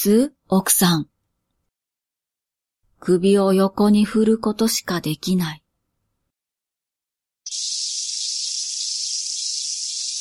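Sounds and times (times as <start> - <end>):
speech: 0.0 - 1.1, 3.0 - 5.6, 7.5 - 7.8
cicadas shrilling from a tree beside a park bench on a hot day: 7.5 - 10.1.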